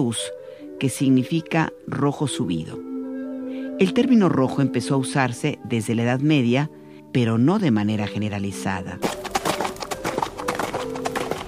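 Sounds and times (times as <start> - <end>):
speech: 0.0 - 2.9, 3.8 - 9.2
horse hooves clip-clopping: 9.0 - 11.4.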